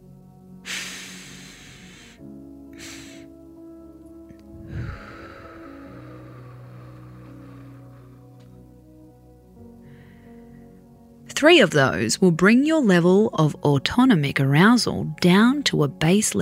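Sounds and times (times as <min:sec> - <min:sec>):
faint steady background: 0:00.0 - 0:16.3
slow exhale through the mouth in a calming breathing technique: 0:00.6 - 0:03.4, 0:04.4 - 0:08.2
two inhales through the nose in a calming breathing technique: 0:00.6 - 0:03.4, 0:04.6 - 0:08.2
speech: 0:11.4 - 0:16.3.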